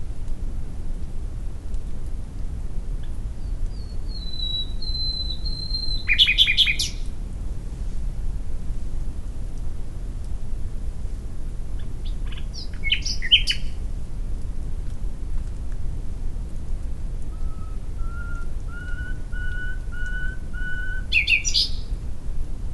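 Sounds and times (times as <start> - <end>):
low background rumble: 0.0 - 22.7
faint chirps: 3.0 - 7.1, 17.3 - 22.0
common nightingale Luscinia megarhynchos singing: 3.4 - 7.0, 12.0 - 13.8, 17.3 - 21.9.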